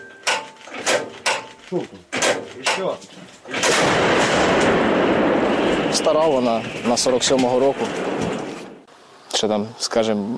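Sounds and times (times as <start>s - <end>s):
sharp metallic clanks and knocks: 0.0s - 4.7s
speech: 1.7s - 4.7s, 5.9s - 8.2s, 9.4s - 10.3s
artillery shot: 3.5s - 8.8s.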